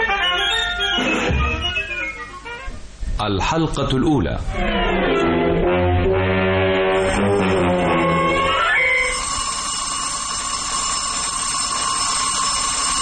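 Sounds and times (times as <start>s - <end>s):
steady high tone: 0.2s - 2.5s, 6.9s - 13.0s
speech: 3.2s - 5.6s
alarm clock ringing: 7.0s - 13.0s.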